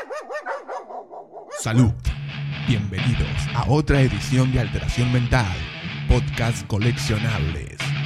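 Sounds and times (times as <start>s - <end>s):
dog barking: 0.0s - 1.7s
speech: 1.6s - 7.9s.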